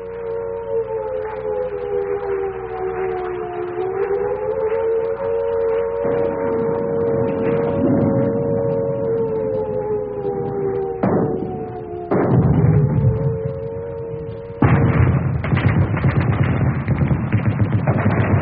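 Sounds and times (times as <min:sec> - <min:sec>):
wailing siren: 0:00.0 - 0:18.3
heavy booms: 0:05.6 - 0:10.2, 0:10.8 - 0:18.3
explosions: 0:06.0 - 0:09.8, 0:10.9 - 0:18.3
rapid gunfire: 0:14.6 - 0:18.3.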